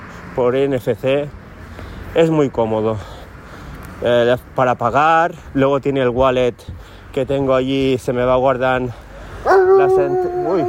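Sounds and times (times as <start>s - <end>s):
speech: 0.4s - 1.4s, 2.1s - 3.1s, 4.0s - 9.0s, 9.8s - 10.6s
small Polish dog howling and yelping: 9.5s - 10.6s.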